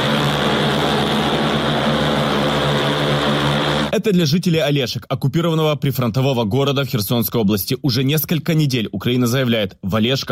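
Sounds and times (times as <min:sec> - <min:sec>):
cargo drone propeller buzzing overhead: 0:00.0 - 0:04.0
speech: 0:04.0 - 0:10.3.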